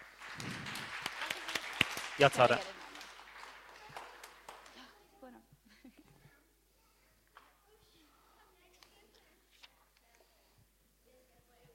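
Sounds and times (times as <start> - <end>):
scattered soft audience applause: 0.0 - 5.1
speech: 2.2 - 2.8.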